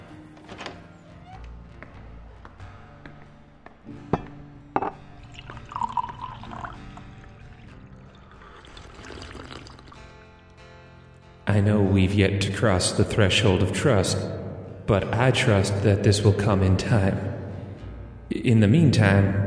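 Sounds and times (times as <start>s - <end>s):
glass being set down with clinks and thunks: 4.1s - 6.8s
drink pouring into a glass: 4.8s - 10.3s
speech: 11.6s - 17.3s, 18.4s - 19.4s.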